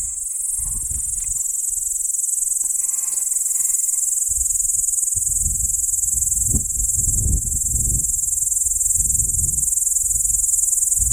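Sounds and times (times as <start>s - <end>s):
P. capensis producing a piercing high drone: 0.0s - 11.1s.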